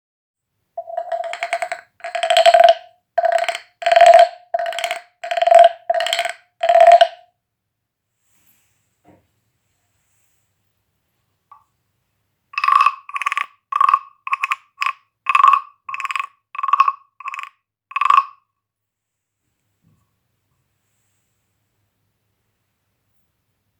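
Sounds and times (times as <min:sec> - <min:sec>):
frogs: 0:00.8 - 0:07.2, 0:12.6 - 0:18.3.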